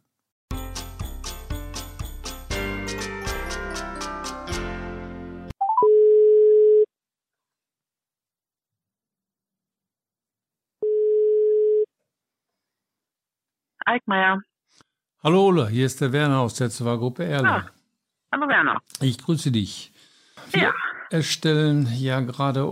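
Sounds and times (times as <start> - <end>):
short tinkling musical jingle: 0.5 - 5.4
telephone ringback tone of a phone interview call: 5.6 - 6.9, 10.8 - 11.9
speech: 13.9 - 14.5, 15.2 - 22.6.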